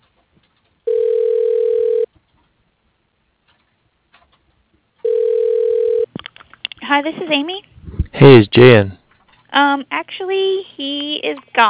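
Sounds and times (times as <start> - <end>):
long steady mid-pitched telephone beeps during call transfer: 0.9 - 2.1, 5.0 - 6.1
speech: 6.9 - 11.6.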